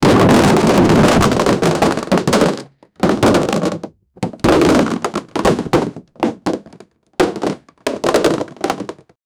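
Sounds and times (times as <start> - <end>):
cardboard boxes falling: 0.0 - 9.1.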